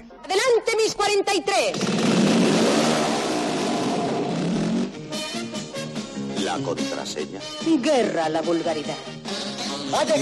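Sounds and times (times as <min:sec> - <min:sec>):
speech: 0:00.9 - 0:03.2, 0:06.5 - 0:10.2
motorcycle engine revving in a television advert: 0:01.8 - 0:05.0.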